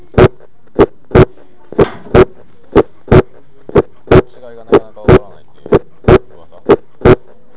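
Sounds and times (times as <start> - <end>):
normal heart sounds: 0.1 - 1.3, 2.1 - 4.3, 5.1 - 7.2.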